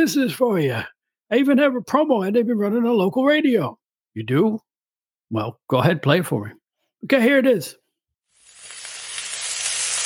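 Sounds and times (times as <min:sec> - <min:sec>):
speech: 0:00.0 - 0:04.6, 0:05.3 - 0:07.8
food sizzling on a hot grill: 0:08.3 - 0:10.0.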